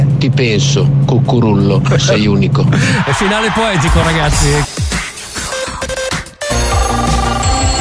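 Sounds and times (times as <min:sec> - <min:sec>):
speech: 0:00.2 - 0:04.7
melodic electronic telephone ringtone: 0:05.7 - 0:07.7.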